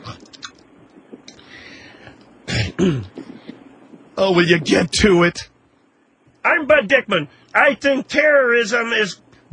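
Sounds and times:
quiet rustling: 0.0s - 2.4s, 3.0s - 6.5s
soft mouth clicks: 0.0s - 4.2s
person clearing throat loudly: 2.5s - 3.4s
speech: 2.8s - 3.2s, 4.2s - 5.5s, 6.5s - 9.5s.

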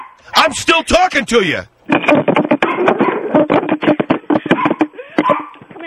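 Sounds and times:
dog barking: 0.0s - 0.5s, 2.6s - 3.3s, 4.5s - 5.6s
speech: 0.2s - 3.0s.

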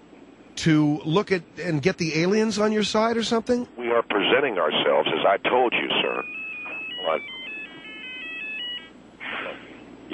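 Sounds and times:
speech: 0.6s - 6.4s, 7.1s - 7.4s
cell phone ringing with electronic melody: 6.0s - 9.0s.

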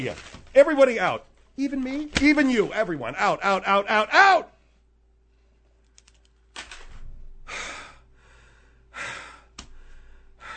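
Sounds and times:
speech: 0.0s - 4.5s
heavy labored breathing: 7.3s - 10.5s.

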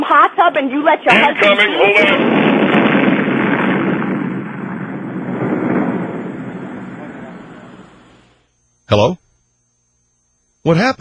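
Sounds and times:
speech: 0.6s - 2.4s, 8.9s - 9.2s, 10.6s - 10.9s
fireworks explosion booming: 0.8s - 8.4s.

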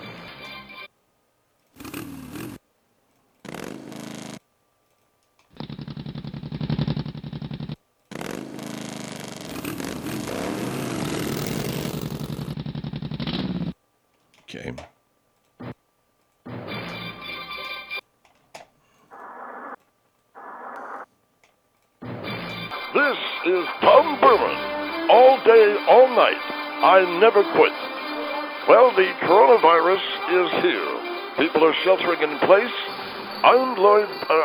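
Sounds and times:
motorcycle engines revving and roaring: 5.6s - 13.6s
speech: 23.1s - 24.6s, 25.5s - 27.9s, 28.7s - 34.4s.

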